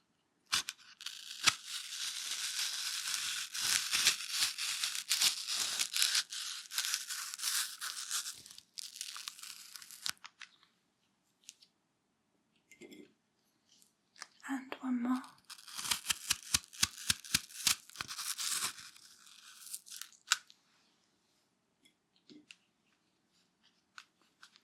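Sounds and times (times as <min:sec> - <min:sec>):
knife cutting into crunchy food: 0:00.5 - 0:10.1, 0:15.4 - 0:20.4.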